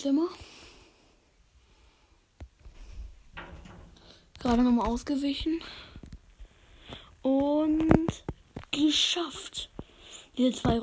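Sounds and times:
speech: 0:00.0 - 0:00.5, 0:04.4 - 0:05.9, 0:07.2 - 0:09.7, 0:10.4 - 0:10.8
faint steady hiss: 0:00.0 - 0:10.8
rustling and shuffling: 0:02.4 - 0:10.8
bumping into a metal cabinet: 0:03.4 - 0:04.2.

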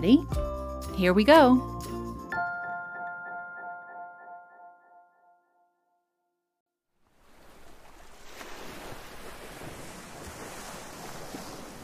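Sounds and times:
speech: 0:00.0 - 0:01.9
melodic chime: 0:02.3 - 0:05.9
ocean waves breaking on beach: 0:07.0 - 0:11.8.

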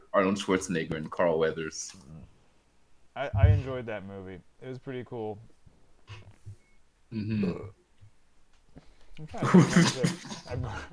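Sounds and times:
speech: 0:00.2 - 0:02.2, 0:03.2 - 0:05.5, 0:07.1 - 0:07.8, 0:08.8 - 0:10.9
loud drawn-out burp: 0:07.1 - 0:07.8.

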